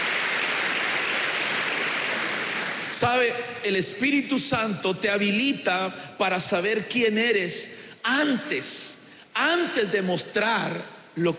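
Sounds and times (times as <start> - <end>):
crowd clapping in dense sustained applause: 0.0 - 3.2
speech: 3.0 - 11.3.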